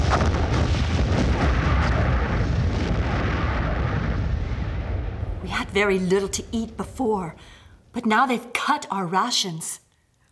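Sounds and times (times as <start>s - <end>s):
explosives destroying harbors in a continuous roar of blasts: 0.0s - 6.6s
speech: 5.8s - 9.8s.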